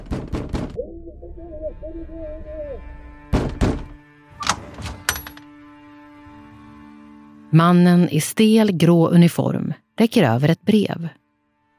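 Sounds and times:
knocking on a door: 0.0 - 0.8, 3.3 - 3.9
speech: 1.4 - 3.0, 7.5 - 11.2.

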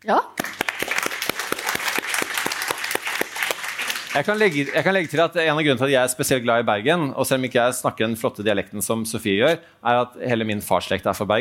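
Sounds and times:
speech: 0.0 - 0.4, 4.2 - 11.3
lower secondary school pupils applauding: 0.4 - 5.4.

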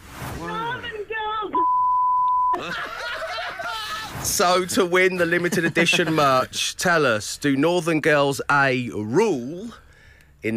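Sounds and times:
censor beep: 1.6 - 2.6
laughter: 2.5 - 6.5
speech: 2.6 - 3.0, 4.3 - 9.8.

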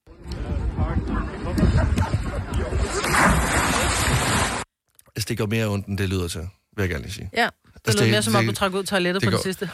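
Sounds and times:
churning water: 0.1 - 4.7
person diving into water: 1.4 - 4.7
speech: 5.2 - 9.7.

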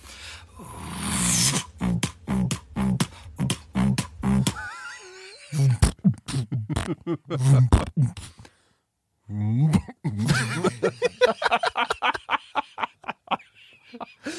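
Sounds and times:
deep buzzing vocal beatbox throat bass: 0.5 - 8.5, 9.5 - 10.8
rapid rhythmic vocal beatbox percussive clicks and hits: 1.1 - 4.7
laughter: 10.2 - 14.3.

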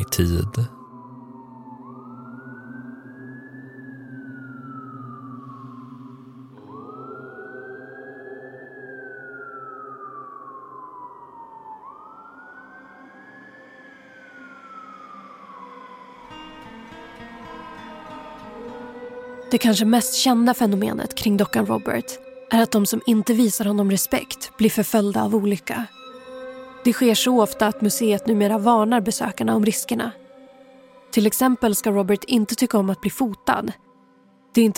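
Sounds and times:
speech: 0.1 - 0.8, 19.5 - 26.0, 26.8 - 30.2, 31.1 - 33.9, 34.5 - 34.7
distant fire engine sirens wailing: 9.9 - 20.7.

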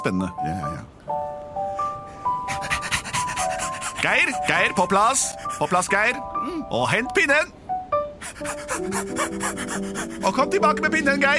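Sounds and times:
speech: 0.0 - 1.2, 4.0 - 7.6, 8.3 - 11.3
person imitating a dog panting: 2.5 - 5.7, 8.2 - 10.3.

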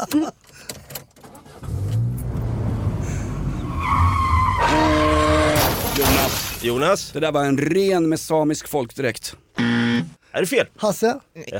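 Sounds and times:
speech: 0.0 - 0.4, 6.3 - 9.4, 10.4 - 11.5
Skoda Fabia engine and road noise while driving: 0.7 - 7.7.

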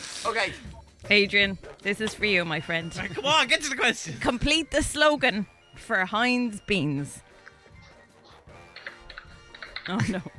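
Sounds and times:
speech: 0.2 - 7.2, 9.8 - 10.3
typing on a computer keyboard: 8.7 - 10.3.

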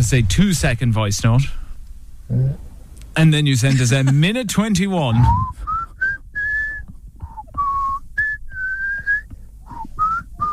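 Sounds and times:
speech: 0.0 - 1.6, 2.3 - 2.6, 3.2 - 5.7
faint low rumble of noise: 0.0 - 10.5
person whistling a simple clear melody: 5.2 - 10.5.

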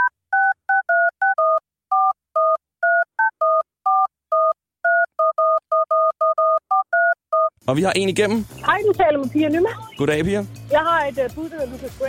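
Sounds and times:
telephone keypad tones forming a tune: 0.0 - 7.5
speech: 7.7 - 12.0.

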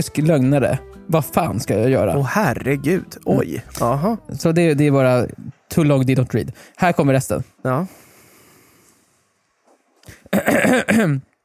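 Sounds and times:
speech: 0.0 - 8.0, 10.3 - 11.3
person clearing throat: 10.2 - 11.3.

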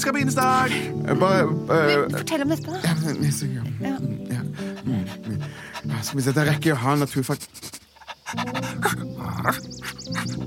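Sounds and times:
speech: 0.0 - 4.4, 6.0 - 7.7, 8.3 - 10.4
small dog panting: 4.4 - 9.1, 9.8 - 10.4.

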